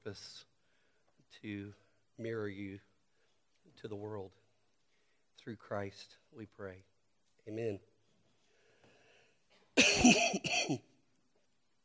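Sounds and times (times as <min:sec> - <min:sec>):
speech: 0:00.1 - 0:00.5, 0:01.4 - 0:02.9, 0:03.7 - 0:04.4, 0:05.4 - 0:07.9, 0:10.0 - 0:10.9
person coughing: 0:09.8 - 0:10.9.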